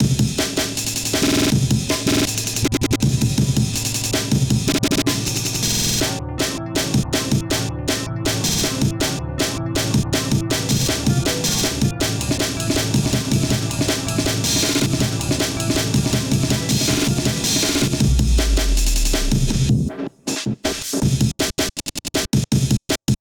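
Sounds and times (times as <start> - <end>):
breakbeat drums: 0.0 - 23.1.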